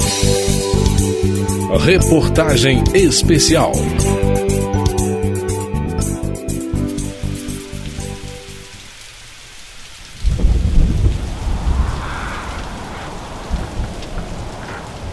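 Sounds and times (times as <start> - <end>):
rain pattering: 0.1 - 5.6, 6.5 - 15.1
speech: 1.7 - 5.0
thunder rumbling: 10.1 - 15.1.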